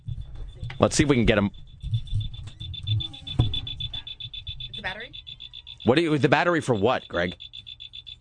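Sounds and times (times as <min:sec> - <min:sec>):
high-pitched electronic beeps from under a studio control panel: 0:00.5 - 0:08.1
speech: 0:00.8 - 0:01.7, 0:05.8 - 0:07.5
soft thump: 0:03.3 - 0:03.7.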